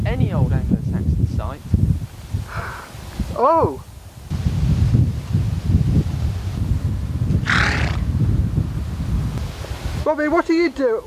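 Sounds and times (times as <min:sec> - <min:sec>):
outdoor rustling: 0:00.0 - 0:11.0
speech: 0:03.4 - 0:03.9, 0:10.1 - 0:11.0
horses snorting with rumbling breaths: 0:07.3 - 0:08.2
horse neighing: 0:07.4 - 0:08.1.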